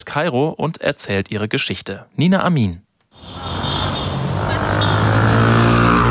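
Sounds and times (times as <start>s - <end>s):
speech: 0.1s - 3.4s
city traffic in Cairo with engines droning: 3.1s - 6.1s.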